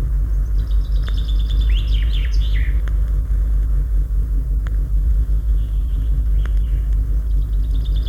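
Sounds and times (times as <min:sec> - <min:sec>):
common chaffinch singing: 0:00.0 - 0:03.1, 0:05.2 - 0:08.0
traffic rumble: 0:00.0 - 0:08.0.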